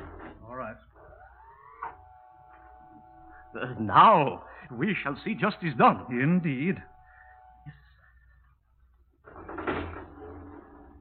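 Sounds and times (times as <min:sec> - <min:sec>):
speech: 0:03.5 - 0:06.9
lift door sliding shut with a soft clatter: 0:09.2 - 0:10.9.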